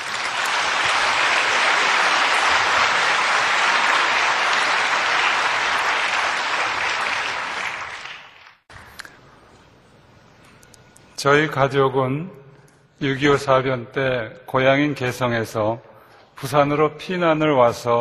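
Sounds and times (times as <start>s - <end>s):
room full of people applauding: 0.0s - 8.7s
speech: 11.2s - 12.4s, 13.0s - 17.9s.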